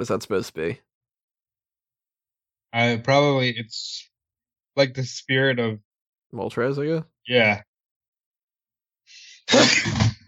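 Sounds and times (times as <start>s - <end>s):
speech: 0.0s - 0.9s, 2.7s - 4.1s, 4.8s - 7.7s, 9.5s - 10.2s
person sneezing: 9.2s - 10.2s.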